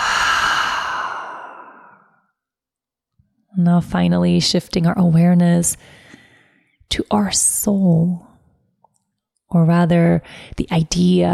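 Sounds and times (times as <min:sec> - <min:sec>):
long breathy exhale through the mouth during a guided breathing exercise: 0:00.0 - 0:02.2
speech: 0:03.6 - 0:06.1, 0:06.9 - 0:08.3, 0:09.5 - 0:11.3.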